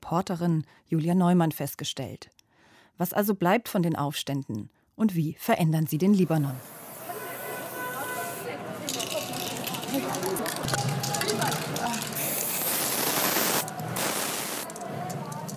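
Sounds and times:
speech: 0.1s - 2.4s, 3.0s - 6.8s, 9.9s - 12.1s
outdoor street noise: 6.2s - 15.5s
spray paint can hissing against a wall: 6.6s - 15.5s
spray paint can rattling: 8.2s - 15.5s.

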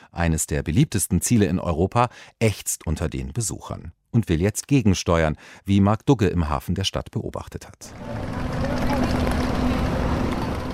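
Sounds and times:
speech: 0.2s - 8.4s
buses idling in the port of Barcelona: 7.9s - 10.7s.

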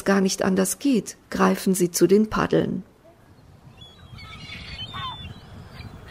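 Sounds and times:
speech: 0.0s - 2.9s
steady low rumble of wind or surf: 2.3s - 6.0s
gulls calling with harsh cries: 3.0s - 6.0s.

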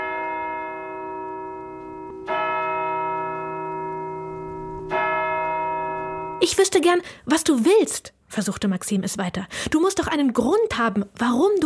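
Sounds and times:
deep bell tolling: 0.0s - 6.4s
speech: 6.4s - 11.6s.

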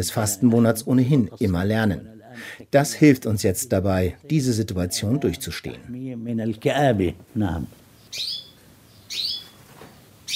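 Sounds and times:
speech: 0.0s - 8.4s
budgerigar chirping excitedly: 8.0s - 9.6s.

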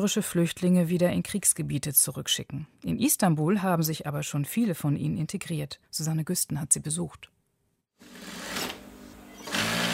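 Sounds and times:
speech: 0.0s - 7.4s
sewing machine sewing a hem on a sofa cover in a small furniture workshop in Istanbul: 8.0s - 9.9s.

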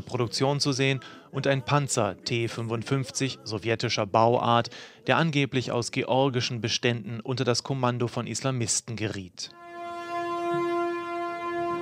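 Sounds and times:
speech: 0.1s - 9.6s
train horn at Moscow's Kazansky station: 9.5s - 11.7s.

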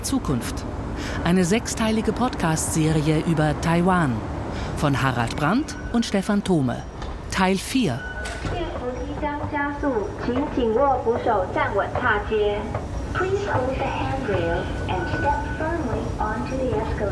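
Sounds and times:
passengers talking: 0.0s - 17.1s
steady low rumble of a moving subway train: 0.0s - 17.1s
speech: 0.1s - 17.1s.

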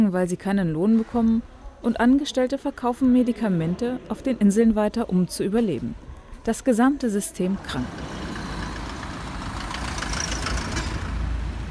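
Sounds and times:
speech: 0.1s - 8.2s
clattering and hissing traffic noise: 7.4s - 11.7s
heavy cars rumbling and idling in streets in front of a hospital: 7.6s - 11.7s.

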